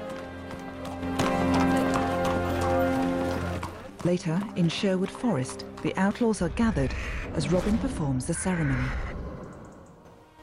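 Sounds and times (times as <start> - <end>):
horse hooves clip-clopping at a running pace through town: 0.0 - 6.5
music: 0.0 - 10.4
speech: 4.0 - 9.1.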